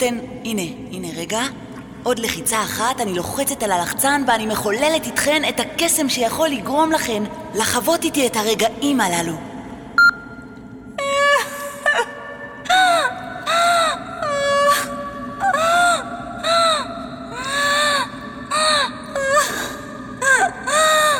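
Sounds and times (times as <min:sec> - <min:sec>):
speech: 0:00.0 - 0:09.5
young woman crying and wailing: 0:11.0 - 0:21.1.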